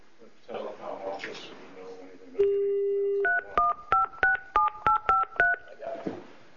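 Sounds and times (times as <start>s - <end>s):
dual-tone beeps of a touch-tone telephone keypad: 3.2s - 5.6s.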